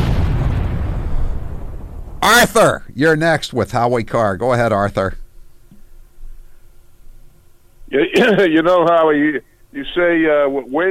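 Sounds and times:
heavy explosion sound effect with deep rolling rumble: 0.0 - 2.5
speech: 2.2 - 5.2, 7.9 - 10.8.

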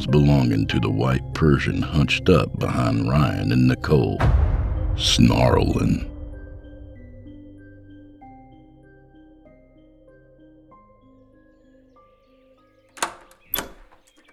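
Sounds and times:
speech: 0.0 - 4.4, 5.0 - 6.1
front door of a musty house opening with clunks: 13.0 - 14.3.

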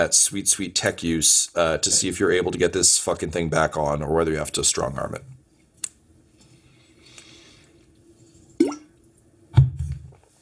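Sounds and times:
speech: 0.0 - 5.4
person gulping water: 8.6 - 9.0.

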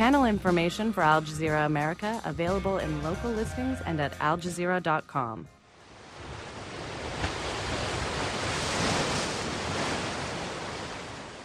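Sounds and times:
speech: 0.1 - 5.6
ocean waves washing onto a beach: 5.6 - 11.4.

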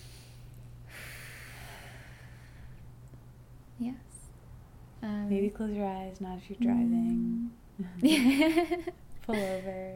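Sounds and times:
deep breath drawn in slowly: 0.0 - 2.9
low steady hum: 0.0 - 9.9
speech: 3.8 - 4.1, 5.0 - 9.9.

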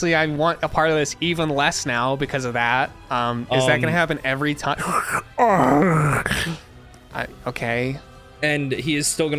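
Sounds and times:
speech: 0.0 - 9.3
voice imitating a pained creature's wailing groan: 4.8 - 6.7.

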